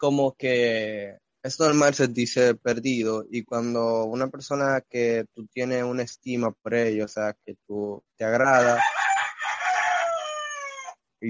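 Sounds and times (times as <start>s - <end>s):
speech: 0.0s - 9.0s
rooster crowing: 8.5s - 11.0s.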